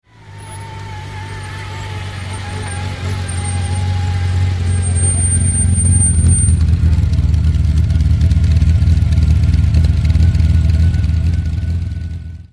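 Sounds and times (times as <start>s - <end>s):
Ferrari engine idling: 0.0s - 12.5s.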